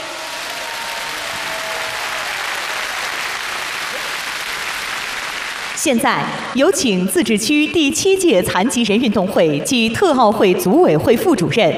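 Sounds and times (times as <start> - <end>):
large audience applause welcoming guests: 0.0 - 5.8
speech: 5.8 - 11.7.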